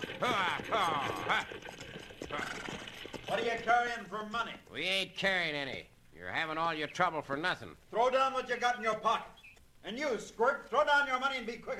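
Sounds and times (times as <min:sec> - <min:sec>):
horses pulling a stagecoach clip-clopping: 0:00.0 - 0:04.5
speech: 0:00.1 - 0:02.6, 0:03.3 - 0:11.7.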